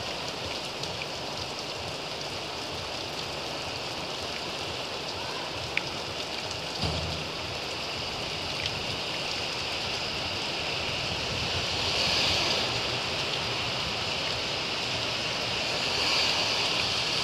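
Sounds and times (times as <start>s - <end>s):
rain falling steadily in a city: 0.0s - 17.2s
brief thump: 6.8s - 7.6s.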